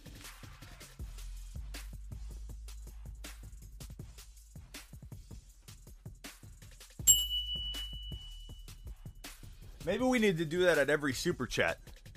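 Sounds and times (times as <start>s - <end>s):
single bright metallic bell strike: 7.1s - 8.6s
speech: 9.8s - 11.9s.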